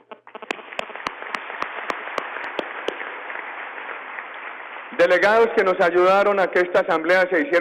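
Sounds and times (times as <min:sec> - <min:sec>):
crowd applause: 0:00.5 - 0:05.8
speech: 0:04.9 - 0:07.5.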